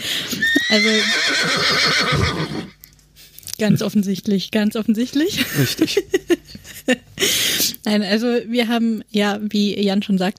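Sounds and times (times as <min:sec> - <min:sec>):
horse whinnying: 0:00.4 - 0:02.8
speech: 0:00.7 - 0:02.8, 0:03.6 - 0:10.3
laughter: 0:05.3 - 0:07.4.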